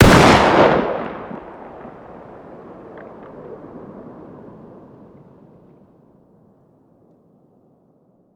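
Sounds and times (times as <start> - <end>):
distant fire: 0.0 - 5.7.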